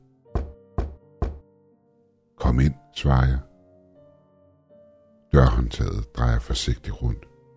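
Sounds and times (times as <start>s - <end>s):
firm knocks on a wooden door: 0.3s - 1.5s
speech: 2.5s - 3.5s, 5.3s - 7.3s.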